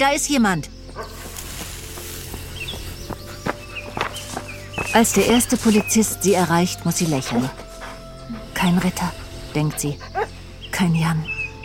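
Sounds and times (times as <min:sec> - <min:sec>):
speech: 0:00.0 - 0:01.1, 0:04.9 - 0:07.6, 0:08.3 - 0:10.1, 0:10.8 - 0:11.3
faint birdsong: 0:00.0 - 0:11.6
footsteps of someone running through a forest: 0:00.8 - 0:09.2.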